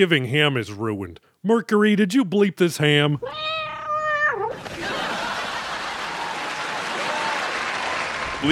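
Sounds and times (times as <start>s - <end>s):
speech: 0.0s - 3.6s, 8.4s - 8.5s
cat meowing: 3.2s - 4.5s
laughter: 4.5s - 8.5s.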